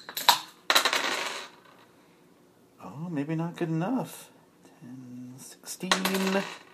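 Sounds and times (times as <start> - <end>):
dice rolling on a hard table: 0.0 - 1.9, 5.8 - 6.7
speech: 3.0 - 6.7.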